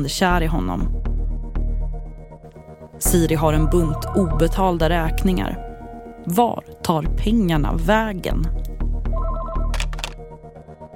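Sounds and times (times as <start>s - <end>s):
speech: 0.0s - 1.0s, 3.0s - 8.7s
telephone ringing with a warbling electronic tone: 9.1s - 10.0s.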